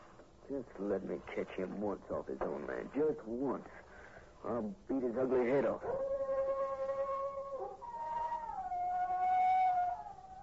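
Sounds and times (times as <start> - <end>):
speech: 0.5 - 3.8, 4.4 - 6.1
wolf-like howl: 5.8 - 10.4.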